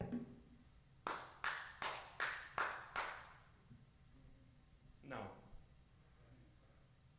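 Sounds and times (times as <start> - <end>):
hand claps with a roomy echo: 1.0 - 3.5.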